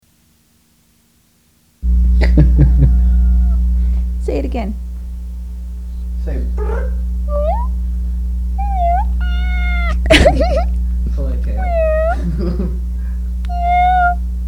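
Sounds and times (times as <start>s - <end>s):
steady low hum: 1.8s - 14.4s
laughter: 2.1s - 3.6s, 10.0s - 11.2s, 12.1s - 13.1s
domestic cat meowing: 2.9s - 3.7s, 6.6s - 7.8s, 8.5s - 10.8s, 11.4s - 12.4s, 13.4s - 14.2s
speech: 4.4s - 4.9s.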